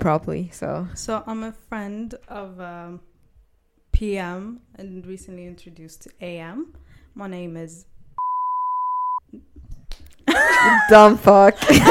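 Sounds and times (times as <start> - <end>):
speech: 0.0 - 3.1, 4.0 - 7.9, 9.3 - 11.8
single-tone censor beep over a spoken name: 8.2 - 9.2.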